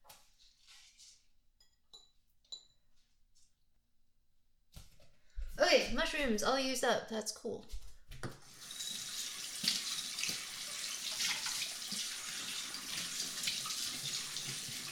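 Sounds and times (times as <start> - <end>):
speech: 5.8 - 7.8
tap water running into a sink while a dish is rinsed: 8.2 - 14.9.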